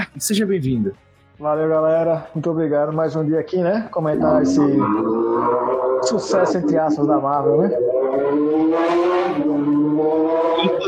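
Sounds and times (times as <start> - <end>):
speech: 0.2 - 9.7
motorcycle engine revving: 4.2 - 10.8.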